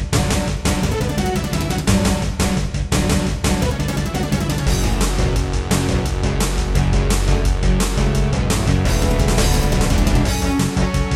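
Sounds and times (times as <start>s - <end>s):
music intro on a Yamaha DB51XG in GS mode: 0.2s - 11.0s.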